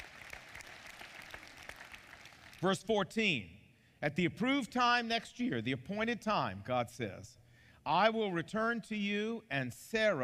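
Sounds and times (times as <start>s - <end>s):
crowd applauding in a large room: 0.0s - 2.6s
speech: 2.6s - 10.2s.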